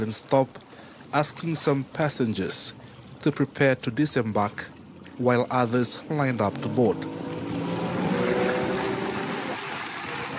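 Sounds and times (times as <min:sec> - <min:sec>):
speech: 0:00.0 - 0:07.3
waves on open sea through the Mamanuva Islands: 0:00.0 - 0:10.3
wind on open sea: 0:00.0 - 0:10.3
passenger boat engine droning on open sea: 0:00.8 - 0:10.3.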